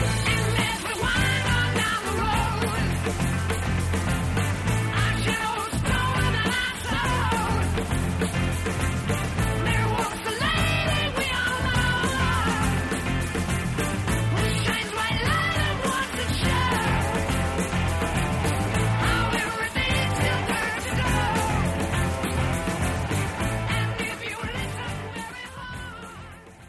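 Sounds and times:
heavy guitars: 0.0s - 26.6s
loud dense hard rock music: 0.0s - 26.6s
pounding drums: 0.0s - 26.6s.

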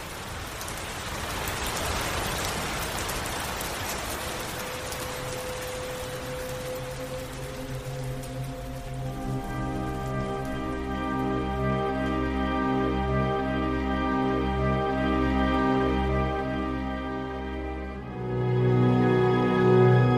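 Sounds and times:
steady rain pattering on a surface: 0.0s - 20.1s
faint sustained tone: 4.2s - 20.1s.

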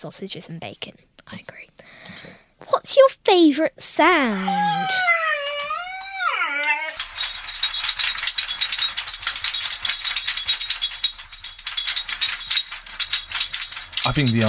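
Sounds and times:
speech: 0.0s - 5.2s, 14.0s - 14.4s
dog howling: 4.2s - 7.0s
metallic jingling and rattling of a dog's collar and food bowl: 4.4s - 14.4s.

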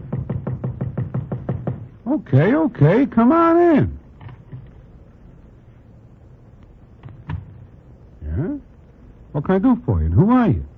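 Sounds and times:
knocking on a hotel room door: 0.0s - 2.0s
speech: 2.1s - 4.0s, 9.4s - 10.7s.

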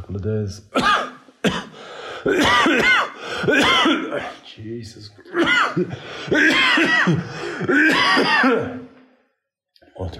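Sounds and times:
speech: 0.1s - 1.6s, 2.2s - 8.8s
man coughing in hotel bed: 0.7s - 4.5s, 5.2s - 9.0s
man's strained breathing: 1.7s - 2.3s, 3.1s - 3.5s, 5.9s - 6.3s, 7.2s - 7.7s.

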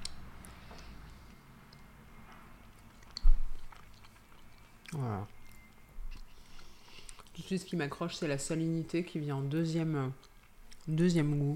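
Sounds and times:
person chewing cheese with its rind: 0.0s - 7.5s, 10.1s - 11.3s
speech: 7.4s - 10.3s, 10.9s - 11.5s.

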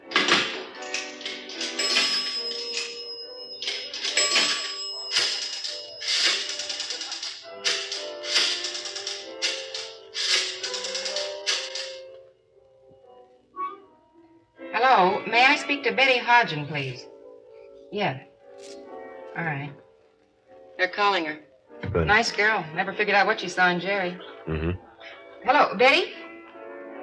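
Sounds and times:
two nickels dropping into a pay phone: 0.1s - 12.1s
ringing chime-like pay phone tones: 1.7s - 6.5s
speech: 15.8s - 17.1s, 17.9s - 18.3s, 19.4s - 19.8s, 20.8s - 24.8s, 25.4s - 26.2s.

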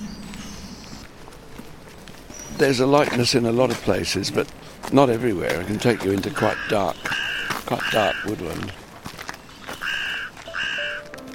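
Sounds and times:
speech: 2.6s - 8.8s
carrion crows cawing in woodland: 5.3s - 11.2s.

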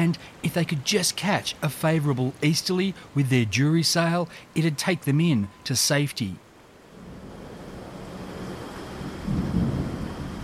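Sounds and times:
speech: 0.0s - 6.4s
steady rain: 0.0s - 10.4s
deep roll of thunder: 7.0s - 10.4s.

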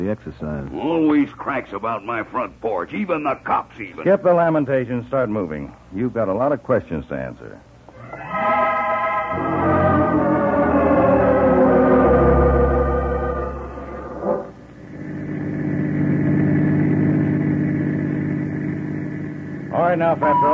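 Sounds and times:
speech: 0.0s - 7.7s, 20.0s - 20.5s
car engine droning while driving: 8.3s - 20.5s.

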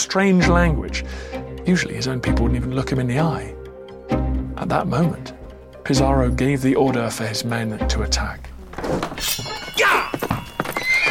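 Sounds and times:
speech: 0.0s - 9.5s
hooves clattering in quick uneven clip-clops: 6.8s - 11.0s
armored cavalry horses galloping out from barns: 8.5s - 11.0s
loud horse whinny: 9.2s - 11.0s.

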